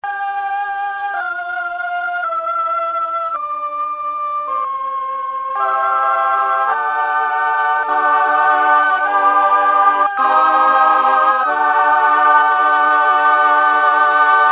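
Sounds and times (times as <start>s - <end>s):
female choir singing: 0.0s - 14.5s.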